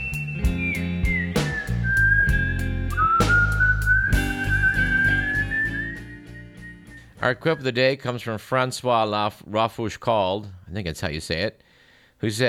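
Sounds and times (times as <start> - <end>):
rhythmic music with percussive beats: 0.0 - 6.3
orangutan whistling at a zoo in Washington D.C.: 0.0 - 7.1
speech: 7.2 - 12.4.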